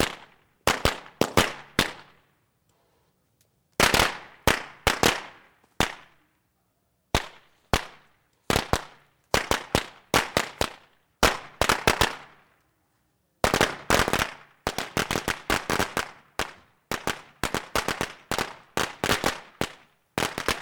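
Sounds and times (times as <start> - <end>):
firecrackers exploding: 0.0 - 2.2, 3.8 - 6.2, 7.1 - 12.5, 13.4 - 20.5.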